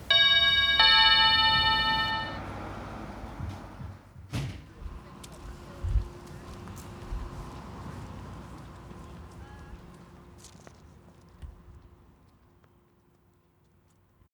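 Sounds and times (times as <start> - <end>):
two-tone door chime: 0.0 - 2.7.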